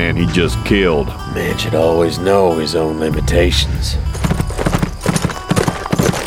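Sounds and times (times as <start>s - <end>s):
speech: 0.2s - 4.2s
saddled stallion's hooves galloping: 4.1s - 6.2s.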